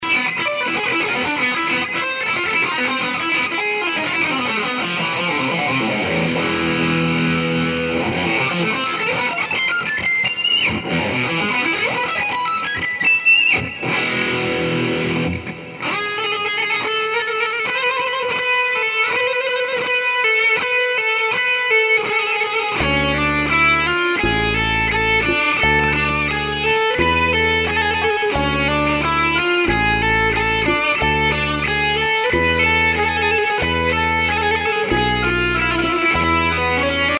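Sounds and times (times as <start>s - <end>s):
electric gypsy Balkan and Mid-East music: 0.0s - 37.1s.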